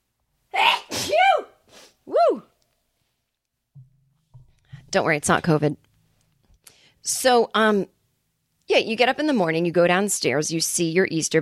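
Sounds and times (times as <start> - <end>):
person sneezing: 0.6 - 2.0
speech: 4.9 - 5.9, 7.0 - 8.0, 8.7 - 11.4.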